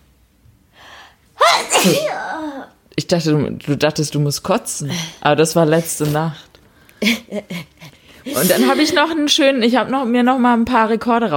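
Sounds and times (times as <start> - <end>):
person sneezing: 1.4 - 2.7
speech: 1.8 - 2.2, 3.0 - 11.3.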